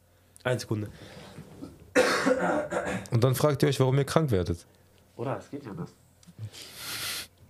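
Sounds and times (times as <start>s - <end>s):
speech: 0.4s - 1.4s, 2.4s - 7.0s
person coughing: 1.9s - 3.1s.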